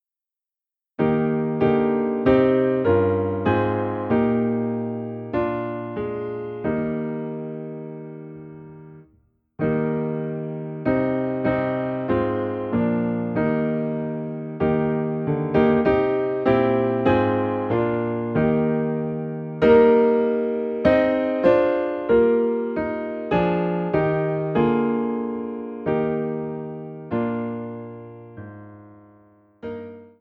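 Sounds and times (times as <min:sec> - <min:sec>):
piano piece in E flat: 0:01.0 - 0:30.1.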